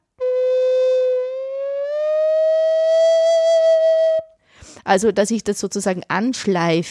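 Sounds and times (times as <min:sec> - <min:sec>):
single sung note gliding up a third to E: 0:00.2 - 0:04.3
speech: 0:04.9 - 0:06.9.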